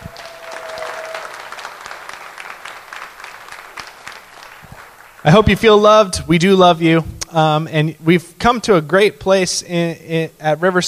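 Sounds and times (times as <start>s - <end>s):
room full of people applauding: 0.0s - 5.8s
speech: 5.2s - 10.8s.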